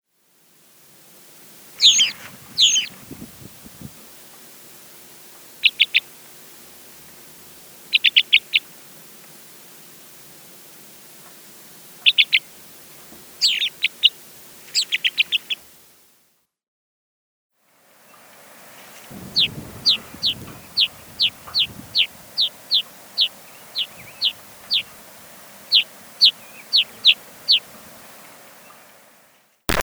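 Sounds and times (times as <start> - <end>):
black rosy-finch calling: 1.7 - 4.0, 5.4 - 6.2, 7.0 - 8.8, 11.2 - 15.8, 18.8 - 29.2.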